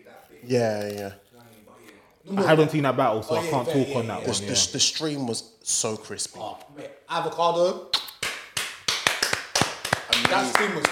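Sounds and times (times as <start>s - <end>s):
speech: 0.4s - 1.2s, 2.2s - 8.0s, 10.2s - 10.9s
sharp hand claps: 7.9s - 10.9s.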